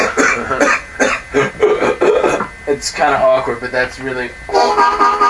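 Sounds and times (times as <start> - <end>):
person coughing deliberately: 0.0 - 2.5
speech: 2.8 - 5.2.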